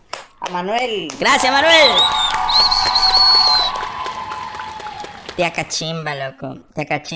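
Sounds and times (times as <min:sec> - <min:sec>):
people clapping: 0:00.0 - 0:06.5
speech: 0:00.5 - 0:03.4, 0:05.4 - 0:07.1
crowd cheering: 0:01.2 - 0:06.5
sustained high whistle-like tone: 0:01.6 - 0:04.7.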